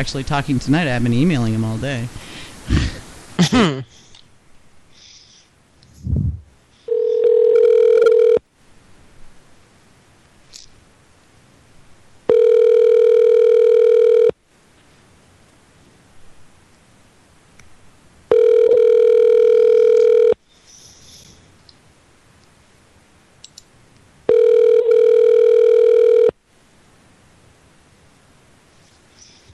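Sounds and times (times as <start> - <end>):
speech: 0.0 - 4.0
phone line ringback tones: 6.9 - 8.4, 12.3 - 14.3, 18.3 - 20.4, 24.3 - 26.4.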